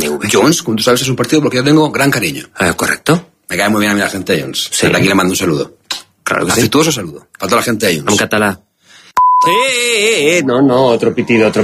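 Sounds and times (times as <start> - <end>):
speech: 0.2 - 8.7, 9.4 - 11.6
censor bleep pure tone: 9.2 - 9.8.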